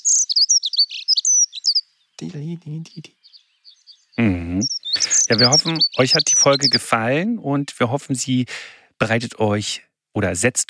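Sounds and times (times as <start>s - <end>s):
dunnock song: 0.0s - 8.0s
speech: 2.2s - 3.2s, 5.0s - 10.6s.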